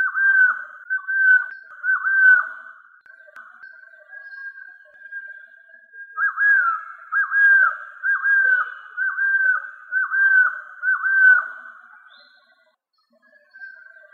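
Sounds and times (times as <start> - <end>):
golden-headed quetzal calling in mellow whistled phrases: 0.0 - 2.9, 3.6 - 12.5.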